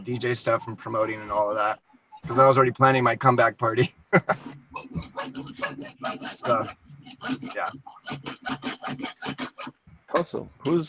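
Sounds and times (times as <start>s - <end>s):
speech: 0.0s - 9.5s, 10.1s - 10.8s
laughter: 3.7s - 6.7s
someone sawing something: 4.5s - 9.8s.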